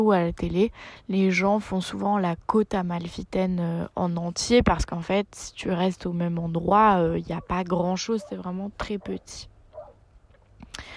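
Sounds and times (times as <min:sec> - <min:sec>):
speech: 0:00.0 - 0:09.5, 0:10.7 - 0:10.9
low quiet hum: 0:00.0 - 0:10.9
faint dog barks: 0:07.3 - 0:10.0.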